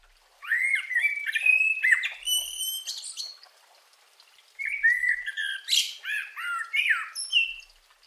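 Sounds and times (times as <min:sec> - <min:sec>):
common blackbird singing: 0:00.4 - 0:03.4, 0:04.6 - 0:07.7.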